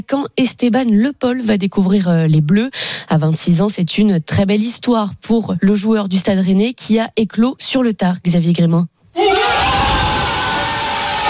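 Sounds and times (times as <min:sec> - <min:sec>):
speech: 0:00.0 - 0:09.8
group of young men shouting and cheering: 0:09.2 - 0:11.2.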